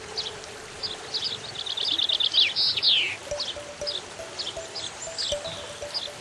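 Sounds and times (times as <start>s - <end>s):
finch, lark and blackbird singing: 0.2s - 6.2s
steady rushing wash like running water: 3.3s - 6.2s.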